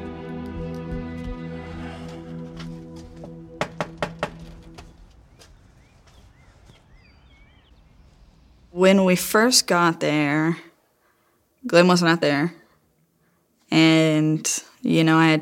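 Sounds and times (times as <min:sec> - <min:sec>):
knocking on the door of a deserted-looking house on a rural property near Prague: 0:03.5 - 0:04.5
speech: 0:08.8 - 0:10.7, 0:11.7 - 0:12.6, 0:13.7 - 0:15.4.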